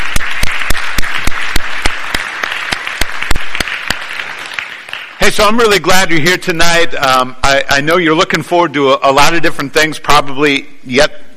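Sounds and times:
audience applause after a children's sermon: 0:00.0 - 0:05.7
speech: 0:05.3 - 0:11.3.

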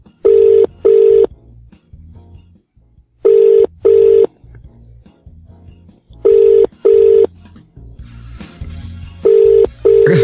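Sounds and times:
telephone ringback tone on outgoing call: 0:00.2 - 0:01.3, 0:03.2 - 0:04.3, 0:06.2 - 0:07.3, 0:09.2 - 0:10.0.

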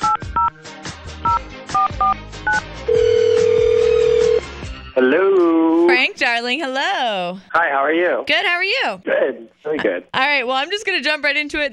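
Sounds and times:
steady loud telephone ringing tone on the line: 0:01.3 - 0:04.5
speech: 0:05.0 - 0:11.7.

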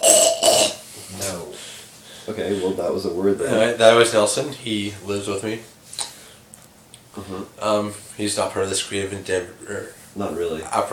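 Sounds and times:
person coughing raspily: 0:00.0 - 0:00.8
speech: 0:02.3 - 0:05.8, 0:07.2 - 0:10.9.

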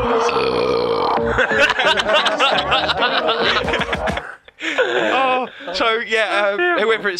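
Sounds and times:
drawn-out croaky burp: 0:00.2 - 0:01.6
snickering and chuckling laughter: 0:01.2 - 0:06.8
speech: 0:01.4 - 0:04.2, 0:05.4 - 0:07.1.

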